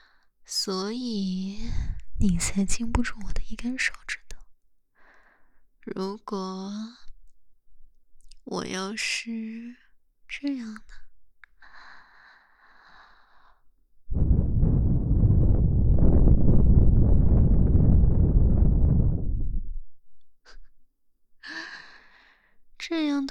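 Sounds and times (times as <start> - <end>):
speech: 0.5 - 4.3, 5.8 - 7.0, 8.5 - 11.0, 22.9 - 23.2
strong gust of wind: 14.1 - 19.9.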